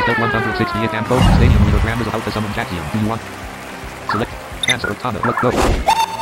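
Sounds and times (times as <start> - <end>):
speech: 0.2 - 3.5, 4.1 - 6.0
ghost-type attack effect from a video game battle: 4.1 - 5.7.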